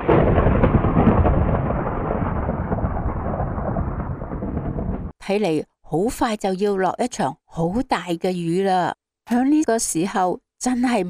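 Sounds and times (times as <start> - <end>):
deep continuous thunder rumbling: 0.0 - 5.2
speech: 5.3 - 11.0.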